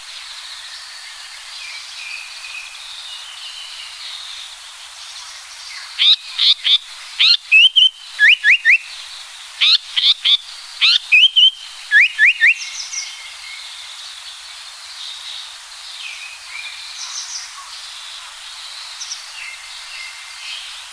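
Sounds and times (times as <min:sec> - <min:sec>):
speech: 0:06.0 - 0:07.5
Japanese paradise flycatcher whistled song: 0:07.2 - 0:08.9, 0:10.8 - 0:13.1.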